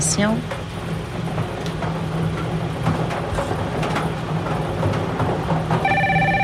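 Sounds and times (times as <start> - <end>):
speech: 0.0 - 0.6
rumbling noise: 0.0 - 6.4
telephone ringing with an electronic trill: 5.8 - 6.4.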